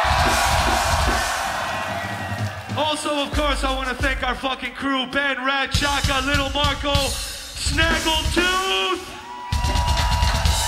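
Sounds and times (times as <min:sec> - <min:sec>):
large concert crowd screaming and cheering at a live show: 0:00.0 - 0:03.6, 0:08.6 - 0:10.6
speech: 0:02.8 - 0:09.2.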